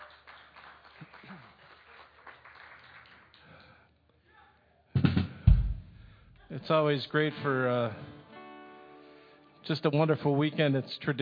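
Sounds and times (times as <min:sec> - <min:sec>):
crowd applauding: 0:00.0 - 0:03.9
speech: 0:06.6 - 0:08.1, 0:09.7 - 0:11.2.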